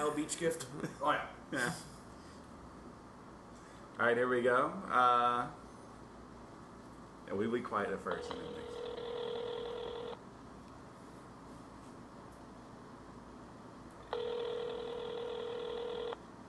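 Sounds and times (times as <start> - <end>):
speech: 0.0 - 2.0, 4.0 - 5.6, 7.3 - 8.8
outgoing call ringback tone over a mobile phone speaker: 8.1 - 10.2, 14.1 - 16.2.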